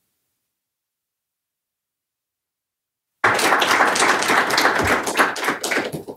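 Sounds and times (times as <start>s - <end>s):
crowd applauding for panelists: 3.2s - 6.1s.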